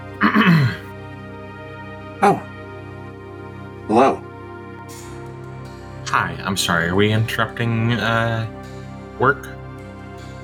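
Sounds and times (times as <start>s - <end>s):
person clearing throat: 0.2s - 0.9s, 2.2s - 2.5s
speech: 2.2s - 2.5s, 6.2s - 8.6s, 9.2s - 9.6s.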